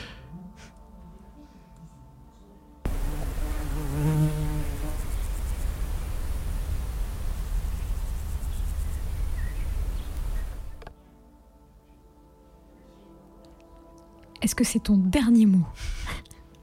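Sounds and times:
steady hiss of noise: 0.0s - 14.3s
bee buzzing loudly: 2.9s - 10.8s
speech: 14.4s - 16.0s.

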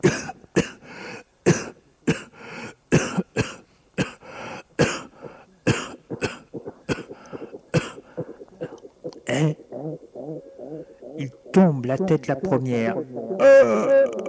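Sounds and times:
man coughing dry hacking coughs set off by dust: 0.0s - 0.8s, 1.5s - 2.3s, 2.9s - 4.2s, 4.8s - 9.6s, 13.4s - 14.1s
speech: 11.6s - 14.0s.

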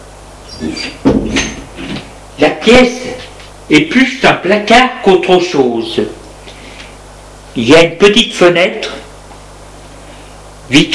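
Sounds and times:
door opening into a small cupboard-like room: 0.5s - 2.1s
speech: 0.6s - 1.1s, 2.4s - 6.2s, 7.6s - 9.0s, 10.7s - 10.9s
short thud: 1.0s - 1.7s.

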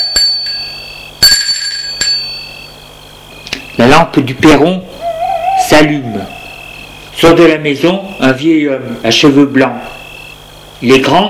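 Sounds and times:
metallic bell rung at a gate: 0.0s - 2.8s
speech: 4.0s - 4.9s, 5.7s - 6.4s, 7.2s - 10.0s, 10.8s - 11.2s.

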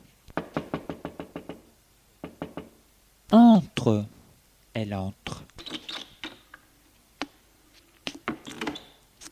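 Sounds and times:
firm knocking on a wooden bedroom door: 0.4s - 2.8s
speech: 3.3s - 4.2s, 4.8s - 5.5s.

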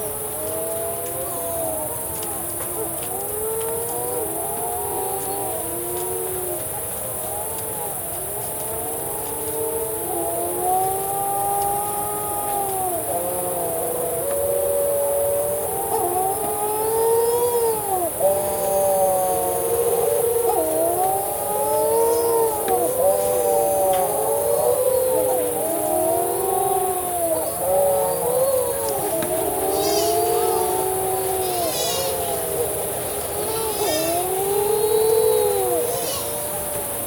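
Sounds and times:
steady hiss: 0.0s - 37.0s
Pacific shearwaters calling in a dense chorus on an islet at nightfall: 17.2s - 37.0s.

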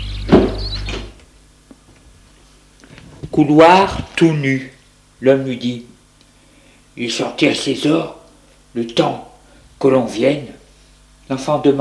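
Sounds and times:
low hum: 0.0s - 11.8s
door shutting with a thud: 0.2s - 1.2s
speech: 3.4s - 5.9s, 7.0s - 10.6s, 11.3s - 11.8s.

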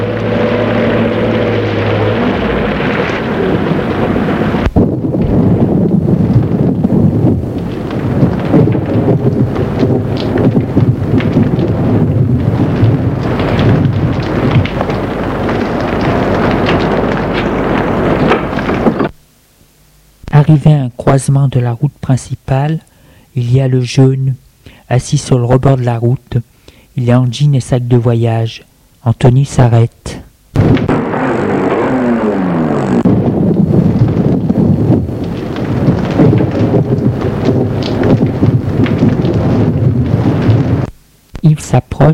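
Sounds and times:
deep steady rumble of thunder in an outdoor storm: 0.0s - 19.2s, 30.6s - 41.0s
gusting wind in a storm: 0.0s - 19.2s, 30.4s - 41.3s
speech: 20.6s - 30.8s.

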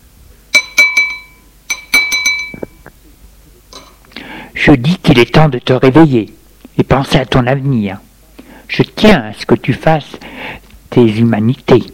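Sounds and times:
spoon tapping on a plate: 0.6s - 2.9s
speech: 4.6s - 8.1s, 8.7s - 11.9s.

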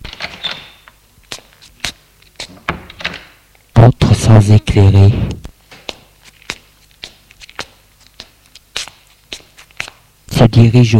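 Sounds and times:
front door of an old house opening with latch clicks and wooden knocks: 0.0s - 1.0s, 2.7s - 3.3s
speech: 4.5s - 5.3s, 10.6s - 10.9s.

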